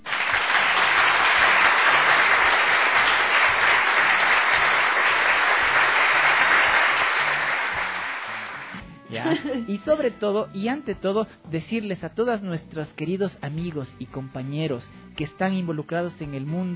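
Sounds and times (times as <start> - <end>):
strong dense applause from many hands clapping: 0.0 - 8.8
speech: 9.6 - 16.7.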